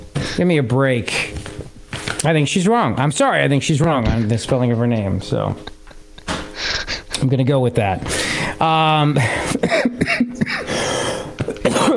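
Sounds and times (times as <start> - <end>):
rough breathy noise: 0.2 - 0.4, 6.5 - 7.1, 8.0 - 8.6, 10.6 - 11.4
speech: 0.4 - 1.4, 2.2 - 5.7, 7.2 - 10.2
person coughing harshly: 9.2 - 11.9.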